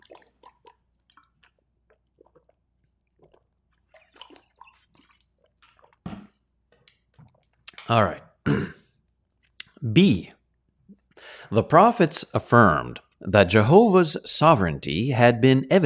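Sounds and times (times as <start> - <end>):
person drinking water with sips and swallows: 0.0 - 9.8, 10.4 - 11.5
speech: 7.9 - 8.7, 10.0 - 10.4, 11.5 - 15.8.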